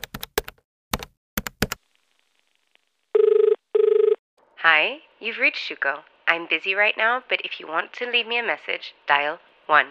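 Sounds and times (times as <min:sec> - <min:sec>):
telephone buzzing ring tones on an outgoing call: 0:03.2 - 0:04.2
speech: 0:04.6 - 0:09.8.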